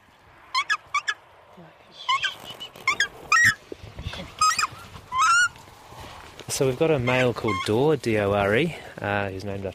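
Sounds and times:
young takahe giving harsh squawking calls while being caught: 2.0 - 5.6, 7.0 - 7.9
rustling and scuffling handling noises: 2.3 - 9.7
speech: 6.6 - 9.7.

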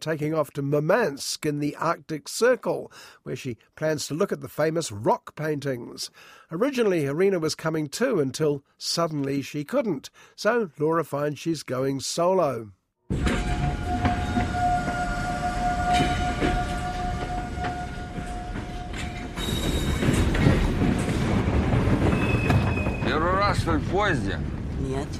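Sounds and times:
speech: 0.0 - 13.2, 23.6 - 25.1
train to Murmansk rumbling along the tracks in the Arctic Circle: 13.1 - 25.1
train's metal wheels squealing: 13.2 - 23.7.

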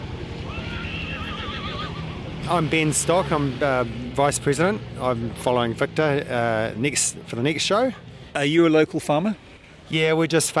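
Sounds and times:
steady outdoor rumble: 0.0 - 10.5
horse whinnying: 0.4 - 2.2
speech: 2.5 - 10.5.

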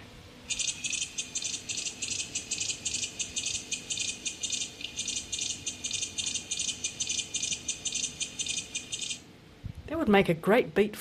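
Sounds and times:
cicada buzzing song with sharp clicks: 0.5 - 9.2
speech: 10.1 - 11.0.

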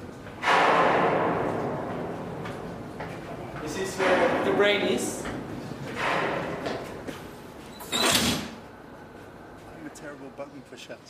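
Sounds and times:
shipping containers banging while being loaded onto a ship: 0.4 - 8.6
speech: 3.8 - 5.3, 10.2 - 11.0.

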